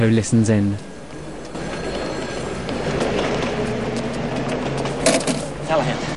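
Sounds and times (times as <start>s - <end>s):
speech: 0.0s - 0.9s
tram pulling up to a stop: 0.0s - 6.1s
tram metallic squeals and rattles: 0.8s - 5.7s.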